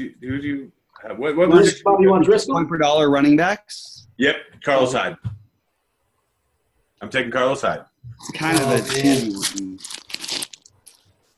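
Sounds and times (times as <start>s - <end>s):
speech: 0.0s - 5.3s, 7.0s - 10.0s
paper being crumpled up: 8.3s - 11.1s.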